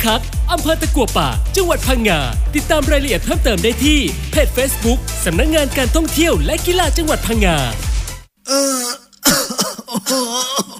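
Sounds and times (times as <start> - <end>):
speech: 0.0 - 7.9, 8.5 - 10.7
man coughing: 8.5 - 10.7.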